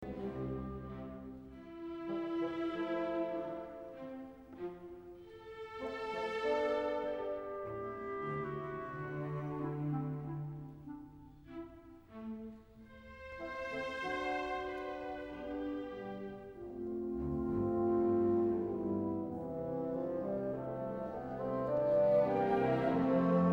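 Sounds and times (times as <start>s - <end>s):
andantino music piece: 0.0s - 23.5s.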